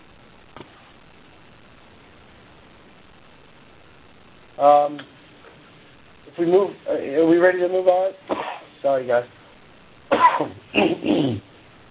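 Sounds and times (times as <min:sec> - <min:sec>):
speech: 0:04.6 - 0:05.2, 0:06.4 - 0:09.4, 0:10.1 - 0:11.0
person clearing throat: 0:08.3 - 0:08.7, 0:10.1 - 0:11.5
person coughing: 0:08.3 - 0:08.7, 0:10.1 - 0:11.4.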